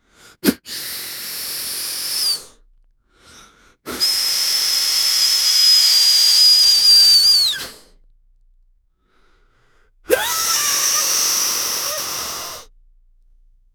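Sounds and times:
man inflating a balloon: 0.4 - 2.5, 3.9 - 7.9, 10.1 - 12.7.

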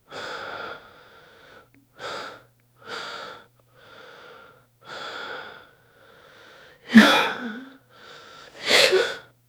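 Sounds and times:
realistic panic breathing: 6.9 - 9.2.

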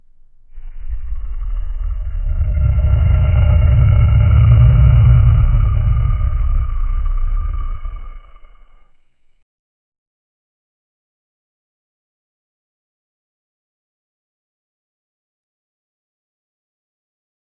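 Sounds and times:
person inhaling: 0.0 - 8.8.

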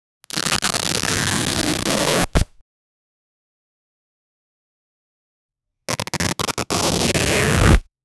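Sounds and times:
cloth fabric tearing: 0.3 - 2.5, 5.9 - 7.9.

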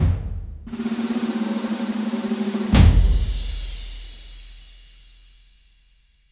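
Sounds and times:
big celebratory drum roll: 0.0 - 5.0.

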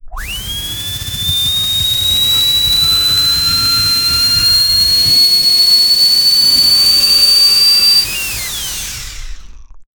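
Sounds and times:
clean turbo spooling: 0.0 - 9.6.

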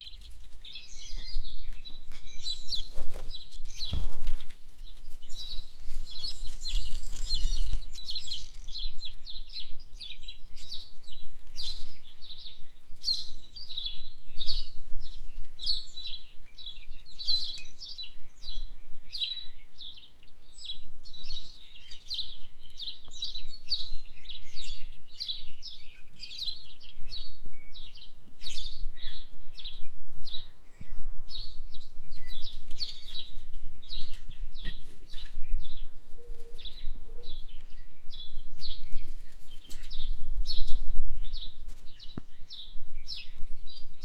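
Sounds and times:
English cottage garden ambience: 0.0 - 44.0.

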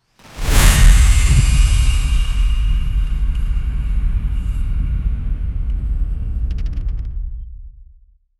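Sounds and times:
dark magic cinematic sound: 0.2 - 7.5.

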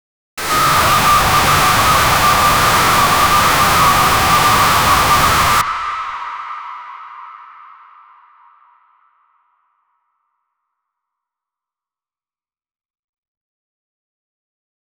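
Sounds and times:
tense drone: 0.4 - 5.8.

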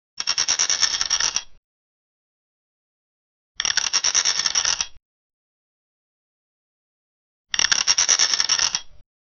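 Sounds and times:
eraser flipping: 0.2 - 1.5, 3.6 - 5.0, 7.5 - 9.0.

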